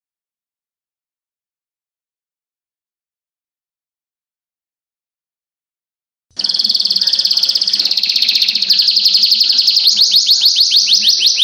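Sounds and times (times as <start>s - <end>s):
Oriental magpie-robin song: 6.4s - 11.4s.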